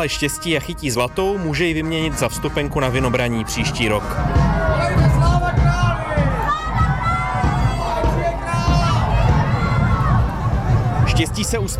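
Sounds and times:
speech: 0.0s - 5.1s, 11.2s - 11.7s
steady low rumble of bustle: 0.0s - 11.7s
dense crowd murmuring and calling out at historical procession in Znojmo town centre: 1.3s - 11.7s
people shouting in crowd: 3.6s - 11.7s.

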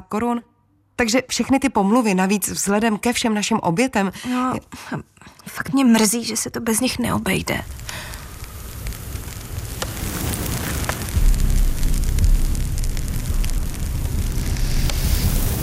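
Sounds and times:
speech: 0.0s - 8.1s
fire crackling and popping: 7.1s - 15.6s.

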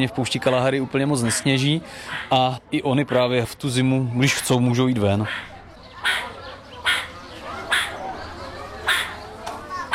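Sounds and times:
speech: 0.0s - 5.5s
meerkat alarm calls in a zoo enclosure in winter: 5.2s - 8.1s, 8.8s - 9.9s.

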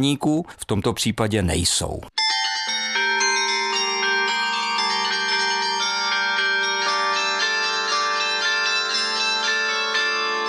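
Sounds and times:
speech: 0.0s - 2.2s
mobile 12-ton carillon bells on a yellow truck playing a melody: 2.2s - 10.4s.

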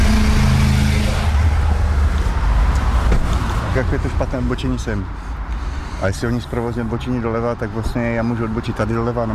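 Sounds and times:
car engine humming driving out of a parking lot: 0.0s - 6.9s
speech: 3.8s - 5.4s, 6.0s - 9.3s.

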